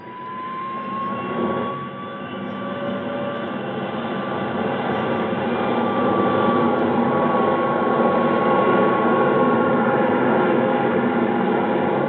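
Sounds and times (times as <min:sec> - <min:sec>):
Air National Guard jet aircraft taking off: 0:00.0 - 0:12.0.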